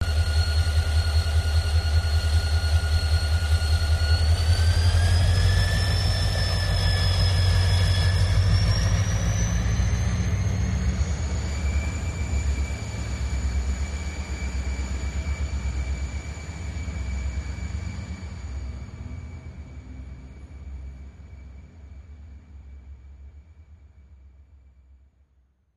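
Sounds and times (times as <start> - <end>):
train engine as train departs: 0.0 - 24.2.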